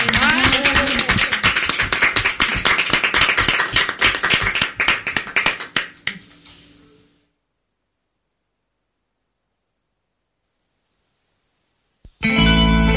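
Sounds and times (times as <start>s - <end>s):
dense applause from many hands: 0.0s - 6.3s.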